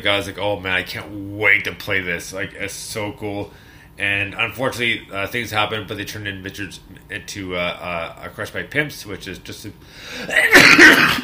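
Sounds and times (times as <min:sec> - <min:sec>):
speech: 0:00.0 - 0:11.2
person sneezing: 0:10.1 - 0:11.2.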